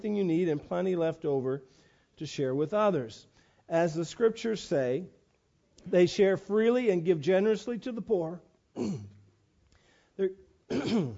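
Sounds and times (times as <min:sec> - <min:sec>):
speech: 0:00.0 - 0:05.2, 0:05.8 - 0:09.1, 0:10.2 - 0:11.1
cough from a reader who has taken a cough drop: 0:08.8 - 0:09.2, 0:10.7 - 0:11.1
throat clearing from a reader who has taken a cough drop: 0:08.8 - 0:09.3, 0:10.7 - 0:11.1.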